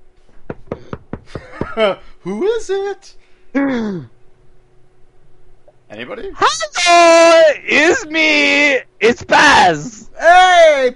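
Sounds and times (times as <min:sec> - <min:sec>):
knocking on a door: 0:00.4 - 0:01.8
speech: 0:01.8 - 0:04.2, 0:05.9 - 0:10.9.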